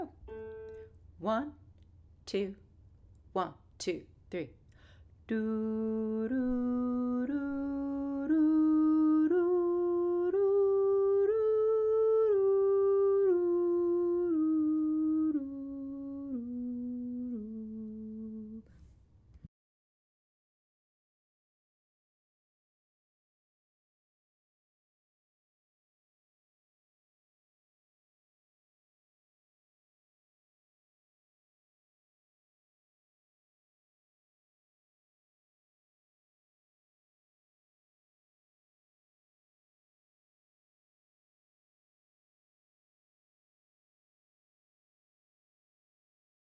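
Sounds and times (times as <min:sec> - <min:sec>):
whole tone scale in A: 0:00.2 - 0:01.5, 0:05.3 - 0:18.7.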